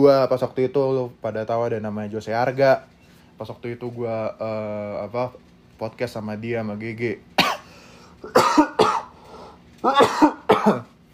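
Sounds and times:
speech: 0.0 - 7.4, 8.2 - 8.7, 9.8 - 10.9
person coughing harshly: 7.4 - 9.2, 9.8 - 11.0.

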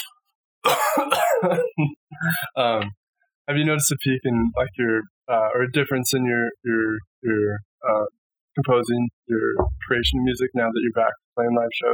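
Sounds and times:
rough coughs: 0.0 - 2.7
throat clearing: 0.7 - 2.9
speech: 1.0 - 11.9.

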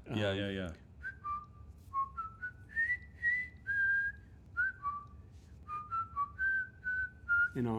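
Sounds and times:
low steady hum: 0.0 - 7.7
person whistling a jaunty march tune: 1.0 - 7.6.

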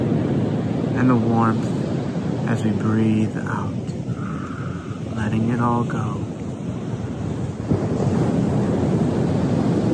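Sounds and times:
low windy rumble: 0.0 - 9.9
ocean waves breaking on shore: 0.0 - 9.9
speech: 1.0 - 1.7, 2.5 - 3.8, 5.2 - 6.2.

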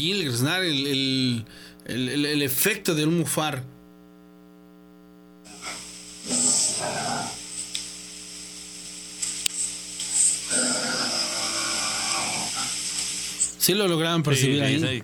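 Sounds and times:
speech: 0.0 - 3.8, 13.6 - 15.0
steady electrical hum: 0.0 - 15.0
rough low growling outside a house: 6.2 - 7.4, 10.5 - 12.8.

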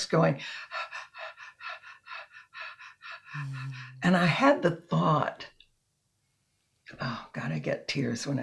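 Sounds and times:
speech: 0.0 - 0.8, 3.3 - 5.5, 6.9 - 8.4
person imitating rapid breathing of a newborn baby: 0.4 - 4.1.

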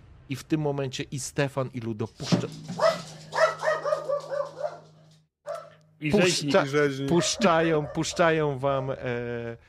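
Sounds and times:
speech: 0.3 - 2.8, 6.0 - 9.6
dog barking high yappy barks: 2.8 - 5.8, 7.1 - 8.4.

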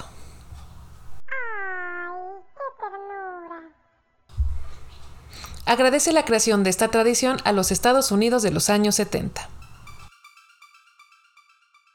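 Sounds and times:
cat meowing: 1.3 - 2.5
speech: 5.7 - 9.6.

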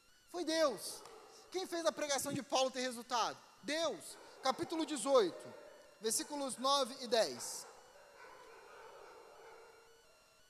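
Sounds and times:
speech: 0.3 - 7.7
dog barking: 0.6 - 1.7, 3.7 - 10.2.

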